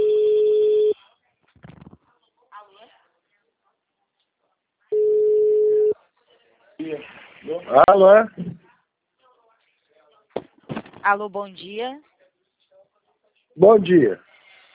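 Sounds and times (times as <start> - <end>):
telephone ringing with an incoming call: 0.0 - 1.0, 4.9 - 5.9
speech: 7.7 - 8.4, 11.1 - 12.1, 13.6 - 14.3.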